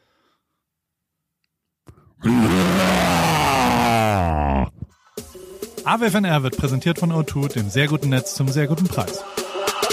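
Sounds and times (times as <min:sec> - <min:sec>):
person imitating a white tiger's roar: 0:02.2 - 0:04.9
speech: 0:05.9 - 0:09.4.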